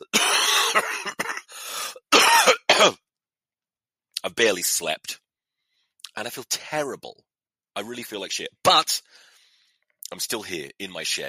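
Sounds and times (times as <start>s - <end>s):
ill person coughing in a harsh chesty fit: 0.0s - 3.0s
speech: 0.8s - 1.2s, 4.4s - 5.2s, 6.2s - 9.2s, 10.1s - 11.2s.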